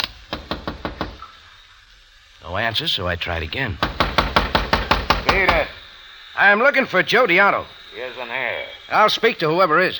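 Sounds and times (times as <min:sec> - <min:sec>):
knocking on the door of a house: 0:00.3 - 0:01.2, 0:03.8 - 0:05.7
speech: 0:02.5 - 0:04.0, 0:05.3 - 0:09.9.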